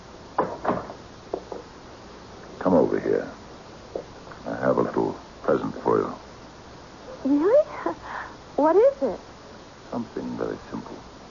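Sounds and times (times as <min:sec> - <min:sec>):
door pushed closed with soft thuds: 0:00.4 - 0:01.6
speech: 0:02.6 - 0:03.4, 0:04.7 - 0:06.2, 0:07.2 - 0:07.6, 0:08.6 - 0:09.3, 0:09.9 - 0:11.1.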